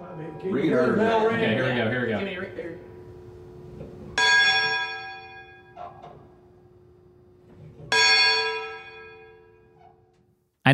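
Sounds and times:
speech: 0.4s - 2.9s
boat's bell struck and clanging: 4.2s - 5.8s, 7.9s - 9.7s.

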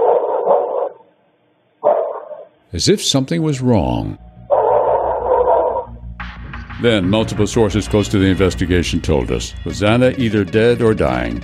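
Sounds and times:
dog barking: 0.0s - 1.1s, 1.8s - 2.5s, 4.5s - 5.9s
man narrating: 2.7s - 4.2s, 6.7s - 11.4s
speech: 2.7s - 4.3s, 6.8s - 11.4s.

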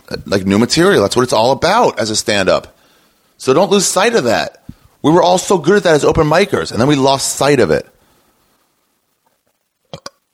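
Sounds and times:
speech: 0.1s - 2.8s, 3.4s - 7.9s
small weak burp: 9.9s - 10.3s.

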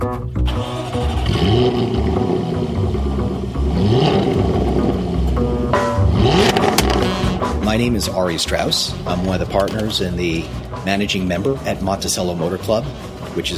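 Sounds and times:
2013 Jaguar F-Type convertible engine starting and revving: 0.2s - 13.5s
mechanical drone: 1.0s - 7.8s
speech: 7.8s - 13.5s.

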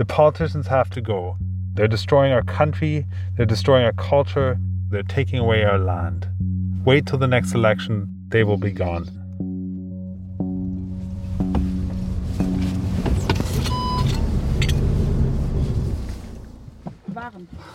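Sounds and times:
speech: 0.0s - 9.2s
car engine idling heard from inside the cabin: 10.0s - 17.7s
rumbling road or wind noise: 10.6s - 17.0s.

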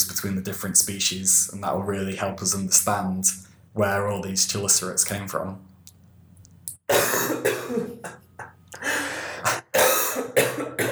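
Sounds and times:
speech: 0.2s - 5.7s
man clearing throat: 6.9s - 8.5s, 9.5s - 10.9s
man coughing: 6.9s - 10.9s.

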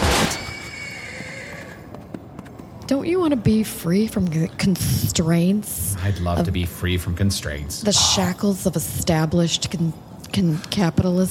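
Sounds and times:
horse whinnying with a wavering, tonal neigh: 0.4s - 1.9s, 7.9s - 8.5s
speech: 2.9s - 11.2s.

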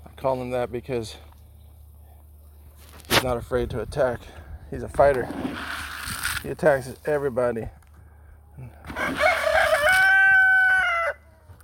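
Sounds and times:
low hum: 0.0s - 5.4s, 6.5s - 8.8s
speech: 0.2s - 1.3s, 3.2s - 5.8s, 6.4s - 7.8s
rooster crowing: 8.9s - 11.5s.

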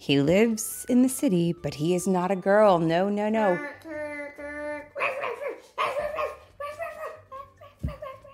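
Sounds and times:
speech: 0.0s - 4.1s
dog whining barks: 5.0s - 7.3s.

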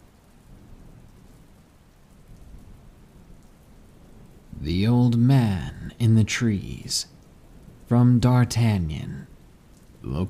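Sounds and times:
heavy rain: 0.0s - 10.2s
deep low rumble of thunder: 2.3s - 10.2s
speech: 4.7s - 7.2s, 7.9s - 9.3s, 10.0s - 10.2s.

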